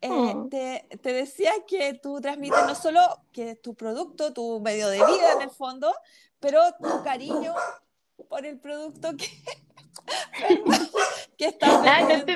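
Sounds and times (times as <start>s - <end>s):
speech: 0.1s - 12.3s
dogs barking: 2.5s - 2.9s, 5.0s - 5.5s, 6.8s - 7.9s, 10.7s - 12.3s
laughter: 9.2s - 12.2s.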